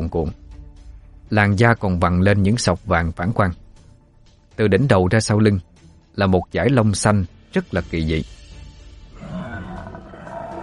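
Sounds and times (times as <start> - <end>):
speech: 0.1 - 0.5, 1.3 - 3.6, 4.6 - 8.4
tiger-headed creature roaring: 9.2 - 10.6.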